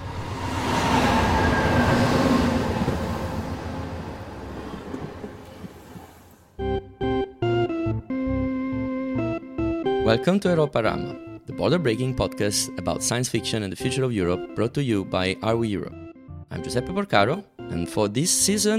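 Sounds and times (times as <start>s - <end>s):
train running on rails: 0.0s - 6.6s
bright musical chords: 6.6s - 18.7s
speech: 10.1s - 18.7s.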